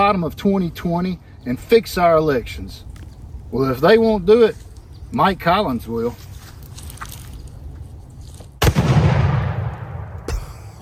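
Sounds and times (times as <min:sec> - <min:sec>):
speech: 0:00.0 - 0:02.9, 0:03.5 - 0:06.3
rifle shots fired at a voting machine: 0:08.6 - 0:10.2.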